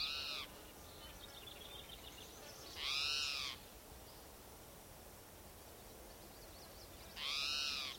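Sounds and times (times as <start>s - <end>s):
spotted towhee raspy mewing cries on a trail at Gibson Jack Creek, Idaho: 0.0s - 0.5s, 2.8s - 3.6s, 7.2s - 7.9s
quiet hissing background: 0.0s - 7.9s.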